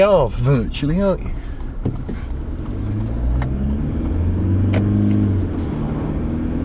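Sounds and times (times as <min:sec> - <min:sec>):
speech: 0:00.0 - 0:02.2
road rumble heard from inside the car cabin: 0:00.0 - 0:06.6
car engine revving as vehicle accelerates in very wet weather: 0:02.0 - 0:06.6.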